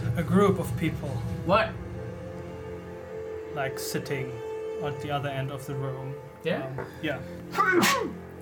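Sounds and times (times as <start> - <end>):
speech: 0.2 - 1.9, 3.5 - 8.3
person sneezing: 7.5 - 8.2.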